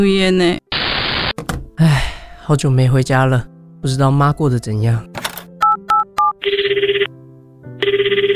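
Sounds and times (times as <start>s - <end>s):
speech: 0.0s - 0.6s, 1.8s - 5.2s, 7.8s - 8.3s
electronic keypad beeps: 5.6s - 7.1s
trilling telephone rings: 5.6s - 7.1s, 7.8s - 8.3s.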